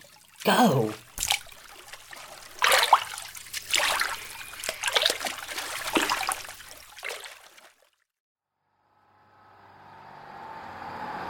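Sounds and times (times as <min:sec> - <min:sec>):
paddle slapping and churning water: 0:00.0 - 0:08.0
speech: 0:00.4 - 0:01.0.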